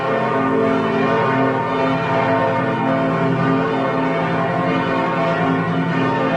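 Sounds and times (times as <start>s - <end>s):
church bells of five churches ringing together: 0.0s - 6.3s.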